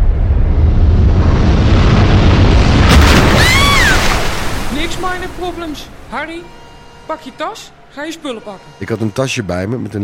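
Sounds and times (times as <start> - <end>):
loud rumbling explosion: 0.0 - 4.7
speech: 5.8 - 10.0.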